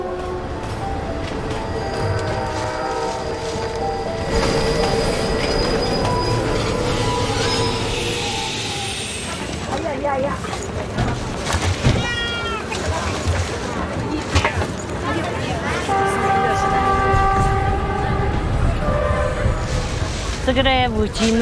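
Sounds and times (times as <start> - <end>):
train rumbling along a winding mountain railway track: 0.0 - 21.4
train wheels squealing with high-pitched tones: 1.8 - 9.8
speech: 20.6 - 21.4.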